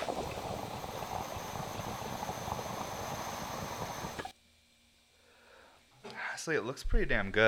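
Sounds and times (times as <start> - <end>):
water bubbling and gurgling in a glass dab rig being pulled with the cap on: 0.0 - 4.3
speech: 6.4 - 7.4.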